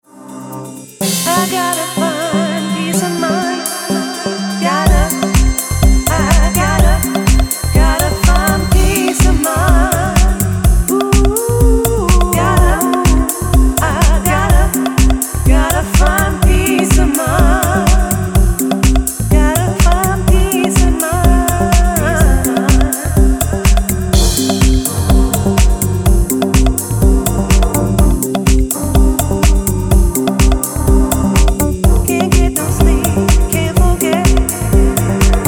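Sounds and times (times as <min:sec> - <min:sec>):
house music: 0:00.0 - 0:35.4.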